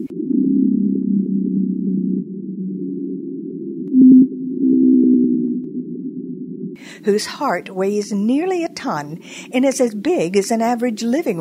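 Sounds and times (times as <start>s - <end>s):
blue whale's deep droning moan: 0.0s - 6.8s
speech: 7.1s - 11.3s.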